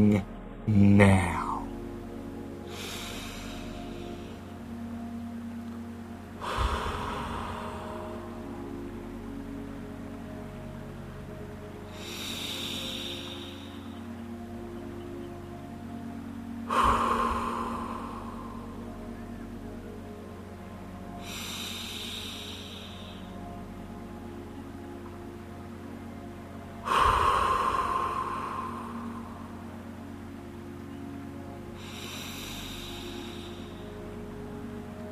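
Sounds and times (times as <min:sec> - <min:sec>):
speech: 0:00.0 - 0:01.4
steady low humming drone: 0:00.0 - 0:35.1
slow deep breaths: 0:02.6 - 0:05.2, 0:06.4 - 0:10.5, 0:11.3 - 0:14.7, 0:16.4 - 0:19.2, 0:20.9 - 0:24.4, 0:26.8 - 0:30.0, 0:31.4 - 0:35.1.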